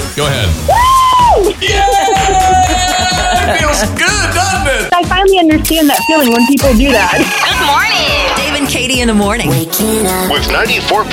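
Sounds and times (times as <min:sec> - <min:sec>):
rhythmic bed: 0:00.0 - 0:11.1
speech: 0:00.2 - 0:00.8, 0:01.4 - 0:02.8, 0:03.5 - 0:11.1
loud high-pitched scream of joy: 0:00.7 - 0:03.5
laughter: 0:01.6 - 0:04.7, 0:06.6 - 0:09.2.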